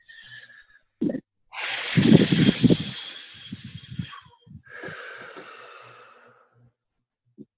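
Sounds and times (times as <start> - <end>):
person blowing out breath forcefully: 1.5 - 6.3.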